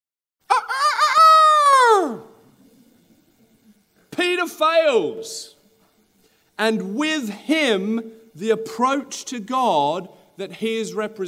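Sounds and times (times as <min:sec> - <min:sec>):
rooster crowing: 0:00.5 - 0:02.4
speech: 0:04.2 - 0:05.6, 0:06.6 - 0:11.2.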